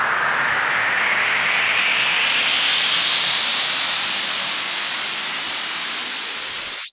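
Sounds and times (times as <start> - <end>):
rising sweep effect: 0.1 - 6.9.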